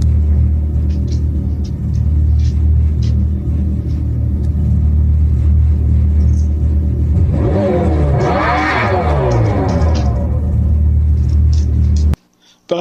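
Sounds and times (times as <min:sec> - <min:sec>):
electric muscle car's fake exhaust rumble revving: 0:00.0 - 0:12.2.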